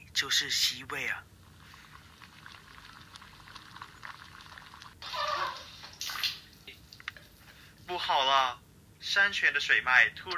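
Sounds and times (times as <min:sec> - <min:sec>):
speech: 0:00.2 - 0:01.4, 0:07.9 - 0:10.3
cake mixture simmering and boiling in a pot over a gentle flame: 0:01.4 - 0:06.1.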